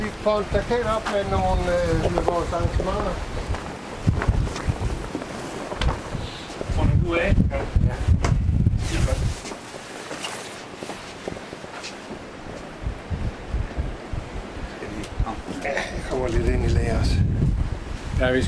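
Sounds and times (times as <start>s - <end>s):
gusty wind buffeting the microphone outdoors near open water: 0.0s - 10.0s, 10.6s - 18.4s
speech: 0.2s - 3.4s, 7.1s - 8.2s, 15.6s - 17.3s, 18.2s - 18.4s
footsteps: 1.9s - 6.8s, 8.9s - 12.7s.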